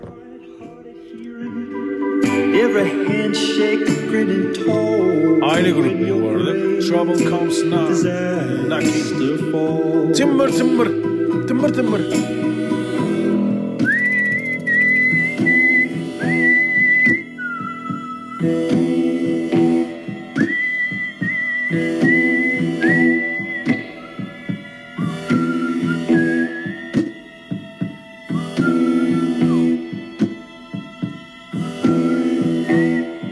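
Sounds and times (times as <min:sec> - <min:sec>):
person whistling a melody: 0:00.0 - 0:30.4, 0:31.6 - 0:33.3
backing track of music with steady rhythm and bass: 0:00.0 - 0:33.3
speech: 0:02.6 - 0:12.5.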